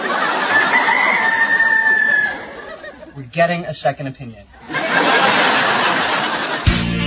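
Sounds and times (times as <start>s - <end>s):
laughter: 0.0s - 3.2s, 4.6s - 6.9s
young hen crowing like a rooster: 0.6s - 2.5s
speech: 3.3s - 4.7s.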